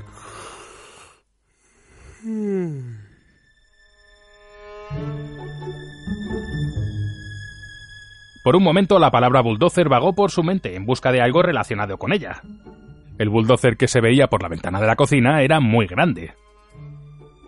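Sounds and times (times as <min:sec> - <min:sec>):
long voiced yawn: 0:00.0 - 0:03.4
speech: 0:08.4 - 0:16.4.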